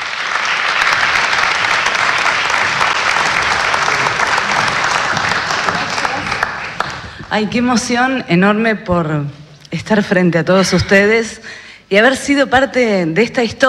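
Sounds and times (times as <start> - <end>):
large audience applause: 0.0 - 7.3
speech: 7.3 - 13.6.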